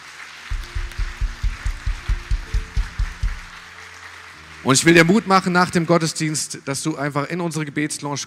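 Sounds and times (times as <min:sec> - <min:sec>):
audience applause: 0:00.0 - 0:06.4
steady rhythmic pulse: 0:00.5 - 0:03.7
speech: 0:04.6 - 0:08.2.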